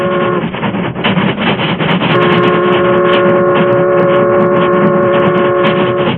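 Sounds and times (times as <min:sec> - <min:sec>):
steady multi-toned steam train whistle: 0:00.0 - 0:00.6, 0:02.1 - 0:06.1
steam train roaring by with heavy rumbling: 0:00.0 - 0:06.1.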